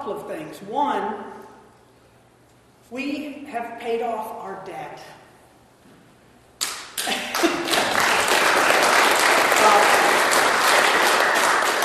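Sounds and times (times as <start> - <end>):
speech: 0.0 - 1.5, 2.9 - 5.2
congregation clapping in a large room: 6.6 - 11.8.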